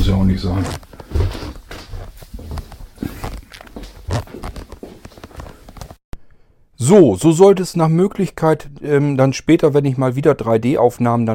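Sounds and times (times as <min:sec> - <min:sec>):
footsteps shuffling: 0:00.0 - 0:06.0
speech: 0:00.1 - 0:01.3, 0:06.9 - 0:11.3.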